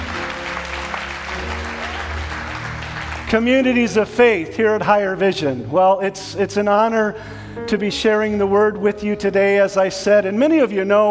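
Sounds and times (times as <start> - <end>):
church congregation applauding with hand clapping: 0.0 - 4.1
speech: 3.3 - 11.0.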